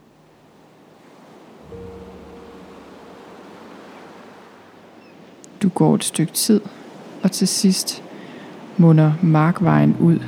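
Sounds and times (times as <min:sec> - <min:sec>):
ocean surf washing onto a beach: 0:00.0 - 0:10.2
low rumble: 0:01.7 - 0:03.8, 0:09.6 - 0:10.2
speech: 0:05.7 - 0:08.1, 0:08.8 - 0:10.2.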